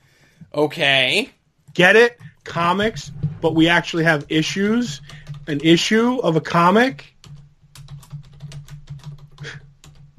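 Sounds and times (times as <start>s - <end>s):
speech: 0.5s - 7.1s
clicking of keys on a computer keyboard: 1.7s - 10.1s
steady low hum: 2.2s - 6.0s.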